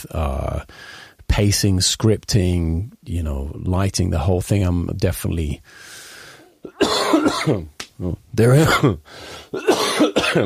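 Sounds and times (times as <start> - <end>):
speech: 0.0 - 5.9, 6.8 - 10.4
rough voiced coughs in a coughing fit: 6.7 - 7.7, 8.6 - 10.4
throat clearing: 6.7 - 9.0, 9.6 - 10.4.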